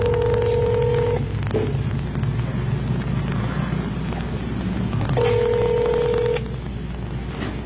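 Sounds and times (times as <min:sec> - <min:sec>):
telephone line ringing with electronic tone bursts: 0:00.0 - 0:01.3, 0:05.1 - 0:06.6
constant low hum: 0:00.0 - 0:07.6.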